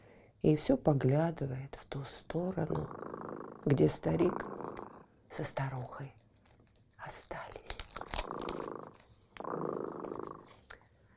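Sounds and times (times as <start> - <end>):
speech: 0.4 - 4.6, 5.3 - 6.2, 7.0 - 7.4
cat purring: 2.0 - 5.4, 7.9 - 10.8.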